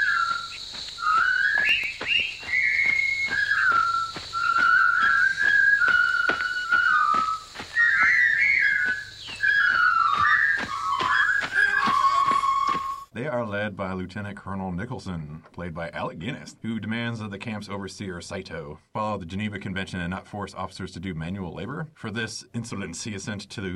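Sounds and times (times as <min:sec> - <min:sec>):
prisoners of war whistling a marching tune in unison: 0:00.0 - 0:13.1
speech: 0:13.7 - 0:23.7.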